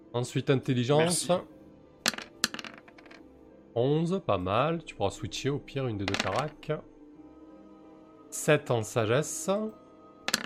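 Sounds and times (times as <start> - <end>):
speech: 0.1 - 1.6, 3.8 - 6.9, 8.3 - 9.8
dice clattering across a table: 2.1 - 3.2, 6.1 - 6.6.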